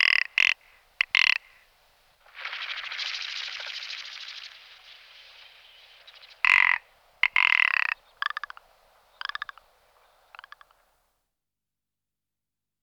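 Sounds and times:
rock ptarmigan rattling call: 0.0s - 1.6s, 2.2s - 9.7s.

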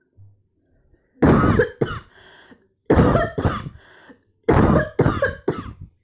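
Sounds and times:
woman coughing: 1.2s - 2.2s, 2.9s - 3.8s, 4.5s - 5.9s.

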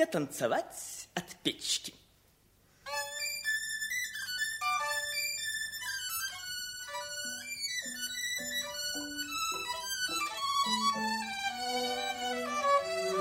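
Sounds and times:
speech: 0.0s - 2.0s
lively bowed violin piece: 2.9s - 13.1s.

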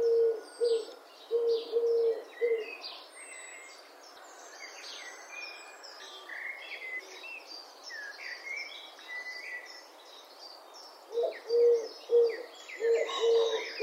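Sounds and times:
Eurasian collared dove cooing: 0.0s - 2.8s, 11.1s - 13.8s
many small birds chirping high: 0.0s - 13.8s.

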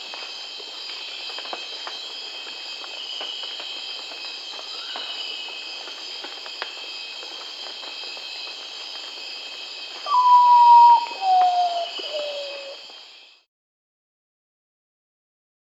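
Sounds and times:
common potoo Nyctibius griseus calling with whistled notes: 10.1s - 12.8s.

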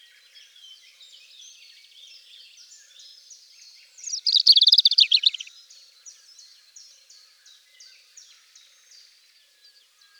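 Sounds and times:
European robin singing: 4.0s - 5.5s.

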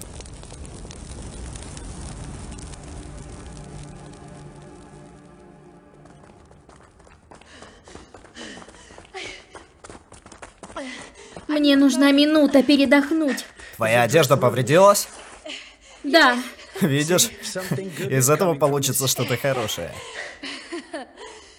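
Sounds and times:
fire burning: 0.0s - 8.9s, 13.8s - 15.2s, 16.8s - 20.0s
speech: 11.5s - 15.2s, 16.1s - 20.4s
laughter: 16.6s - 21.5s.

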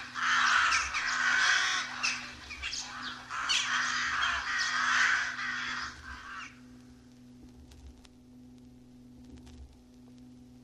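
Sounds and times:
rook colony cawing: 0.0s - 6.7s
faint low hum: 0.0s - 10.6s.

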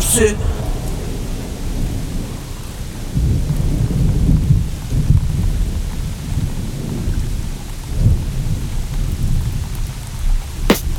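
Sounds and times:
sharp crack of thunder: 0.0s - 4.6s
deep thunder rumbles: 0.0s - 9.6s
heavy rain pouring onto asphalt: 0.0s - 10.9s
speech: 0.2s - 0.6s.

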